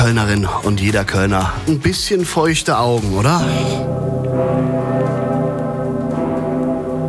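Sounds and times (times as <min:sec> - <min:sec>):
speech: 0:00.0 - 0:04.1
huge cathedral bell tolling: 0:03.4 - 0:07.0.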